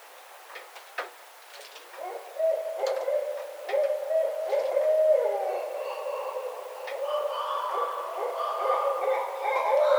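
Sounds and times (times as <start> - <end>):
barred owl hooting: 2.0 - 9.9.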